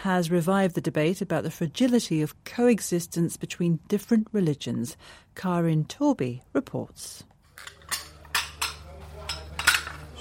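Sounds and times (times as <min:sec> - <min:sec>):
speech: 0:00.0 - 0:07.8
plates, pans and kitchen utensils in plastic boxes clinking in Lebanon: 0:07.5 - 0:10.1.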